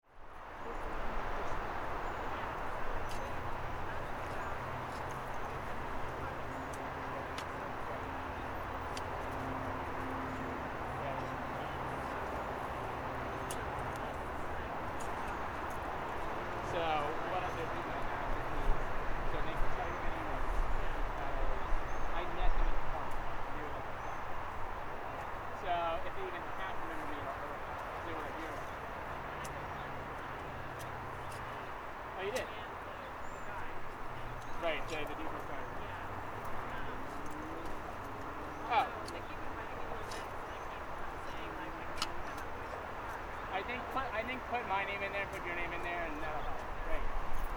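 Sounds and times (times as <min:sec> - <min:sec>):
farm ambience at Allemany: 0:00.6 - 0:47.5.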